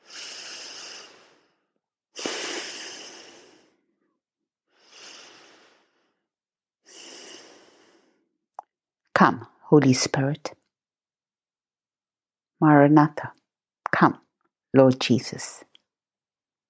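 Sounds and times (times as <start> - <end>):
slow deep breathing through the nose, inhaling and exhaling: 0.0 - 3.9, 4.7 - 6.2, 6.8 - 8.3
speech: 9.2 - 10.6, 12.6 - 15.7.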